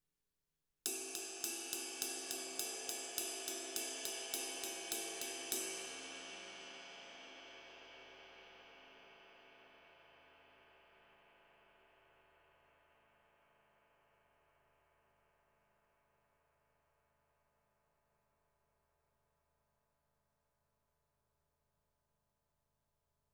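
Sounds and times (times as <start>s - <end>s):
rock ride cymbal: 0.9s - 8.3s.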